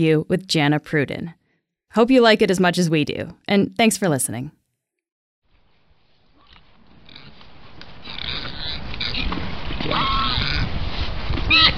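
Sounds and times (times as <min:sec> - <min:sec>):
speech: 0:00.0 - 0:04.6
Eurasian wild boar grunting and snorting: 0:06.9 - 0:10.8.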